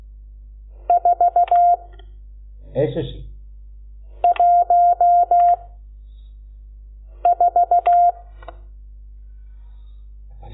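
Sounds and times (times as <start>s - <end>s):
telephone keypad dialing tones: 0.9s - 1.8s, 4.2s - 5.6s, 7.3s - 8.2s
speech: 2.8s - 3.3s.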